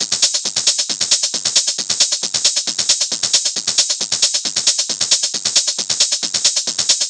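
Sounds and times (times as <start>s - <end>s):
techno hi-hat loop: 0.0s - 7.0s.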